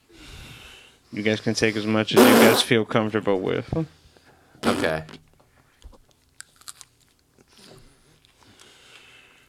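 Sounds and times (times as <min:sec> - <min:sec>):
speech: 0:01.1 - 0:04.0, 0:04.8 - 0:05.2
person biting into hot spicy crunchy food: 0:06.4 - 0:07.1.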